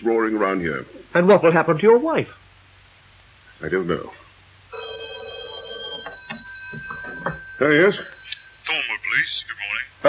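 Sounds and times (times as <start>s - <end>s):
speech: 0.0s - 2.4s, 3.6s - 4.2s, 7.6s - 8.2s, 9.2s - 10.0s
telephone bell ringing at a police station switchboard: 4.7s - 10.0s.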